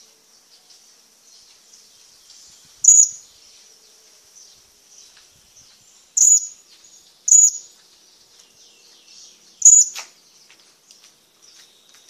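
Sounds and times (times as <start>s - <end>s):
faint thin background twitter: 0.0s - 12.0s
hanging parrot giving piercing high-pitched calls: 2.8s - 3.2s, 7.3s - 7.6s, 9.6s - 10.0s.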